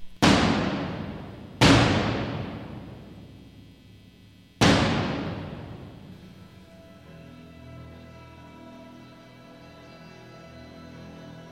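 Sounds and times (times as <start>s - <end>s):
very large bass drum booming in St. Mark's Church: 0.1s - 3.5s, 4.6s - 6.3s.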